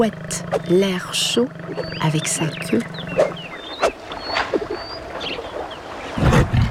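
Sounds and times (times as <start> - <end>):
speech: 0.0 - 3.4
large lion growling low: 0.0 - 4.9
birds chirping: 0.0 - 6.7.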